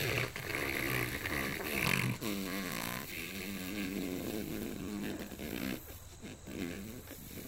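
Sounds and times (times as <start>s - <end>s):
person blowing wet raspberries imitating fart noises: 0.0s - 7.4s.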